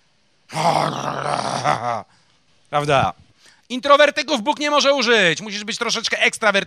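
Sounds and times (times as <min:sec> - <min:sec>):
person imitating a pastor growling: 0:00.5 - 0:02.1
speech: 0:00.6 - 0:02.1, 0:02.7 - 0:06.6.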